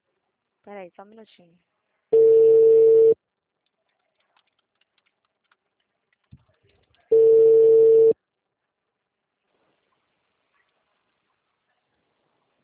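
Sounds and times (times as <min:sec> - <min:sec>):
speech: 0:00.6 - 0:01.7
telephone tone after a dropped call: 0:02.2 - 0:03.2, 0:07.1 - 0:08.2.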